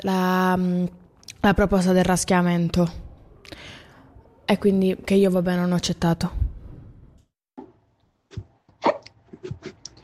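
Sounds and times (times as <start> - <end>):
speech: 0.0 - 3.8, 4.5 - 6.5
hiccups: 8.8 - 10.0.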